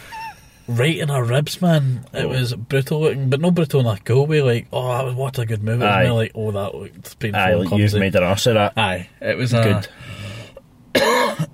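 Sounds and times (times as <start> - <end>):
speech: 0.7 - 10.2
person with a chest infection coughing: 11.0 - 11.5.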